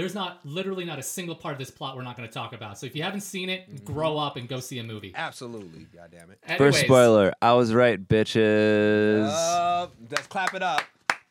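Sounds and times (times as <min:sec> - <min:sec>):
speech: 0:00.0 - 0:11.0
person voiced vocalizing: 0:03.7 - 0:04.1
hands clapping: 0:10.1 - 0:11.3.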